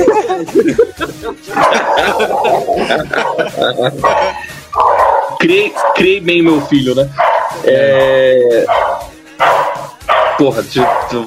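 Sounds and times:
people laughing: 0.0 - 5.0
speech: 0.4 - 4.6, 5.4 - 9.5, 10.4 - 11.2
pet dog barking excitedly: 1.5 - 7.7, 8.6 - 11.2.

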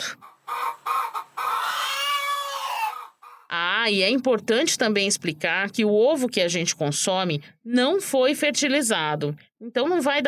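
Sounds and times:
caged hens clucking inside a poultry shed used for egg production: 0.0 - 3.8
speech: 3.8 - 10.2.

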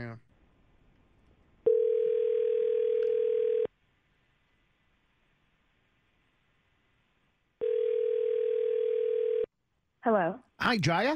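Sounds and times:
telephone ringback tone while a phone call is placed: 1.7 - 3.7, 7.6 - 9.5
speech: 10.1 - 11.1.

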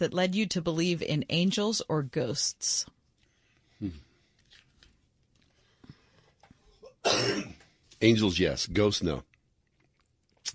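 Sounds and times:
speech: 0.0 - 3.0, 3.8 - 4.1, 7.0 - 9.3
man coughing: 6.8 - 7.6.

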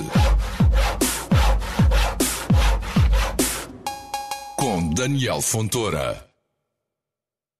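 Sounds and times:
handsaw sawing through wood: 0.0 - 3.7
speech: 5.0 - 6.3.

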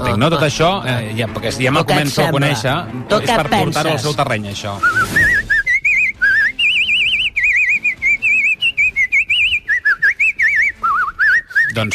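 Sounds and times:
speech: 0.0 - 5.2, 11.8 - 11.9
person whistling a lively tune with vibrato: 4.8 - 11.8.

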